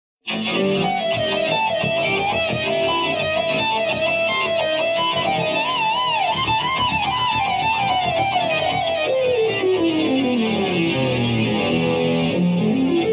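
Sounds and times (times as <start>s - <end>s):
guitar playing: 0.2s - 13.1s.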